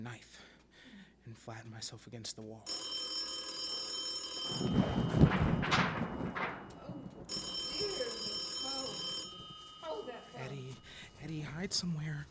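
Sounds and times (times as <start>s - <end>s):
speech: 1.3s - 3.0s, 4.5s - 5.8s, 9.9s - 12.2s
telephone ringing in shrill bursts: 2.7s - 11.3s
rustling clattering noise with a vocal quality: 4.5s - 7.8s.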